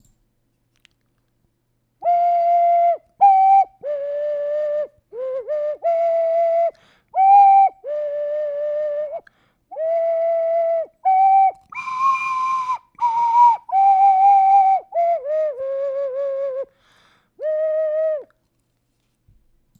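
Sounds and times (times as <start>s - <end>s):
flute playing: 2.0s - 9.2s, 9.8s - 16.7s, 17.4s - 18.3s.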